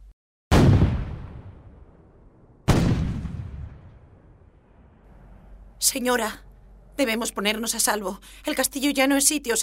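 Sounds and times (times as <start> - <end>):
heavy cannon blasts: 0.5 - 5.6
speech: 5.8 - 6.4, 7.0 - 9.6.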